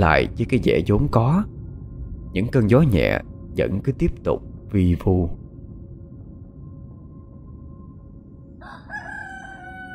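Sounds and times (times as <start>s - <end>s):
speech: 0.0s - 1.6s, 2.3s - 5.4s
low rumble: 0.0s - 8.7s
rooster crowing before dawn: 8.6s - 9.9s.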